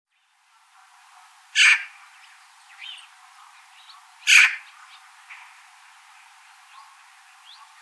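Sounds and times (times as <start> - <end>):
Eurasian magpie Pica pica calling with harsh rasping chak notes: 1.5 - 2.0, 4.2 - 5.4.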